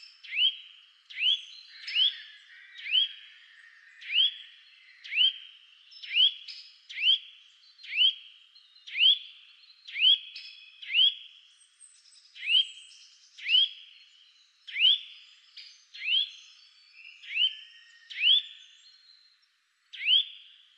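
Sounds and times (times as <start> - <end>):
Sitta europaea Eurasian nuthatch calling with upslurred whistled notes: 1.2 - 3.3, 4.0 - 8.2, 9.9 - 11.2, 12.4 - 13.8, 14.7 - 16.4, 17.0 - 18.8, 19.9 - 20.4.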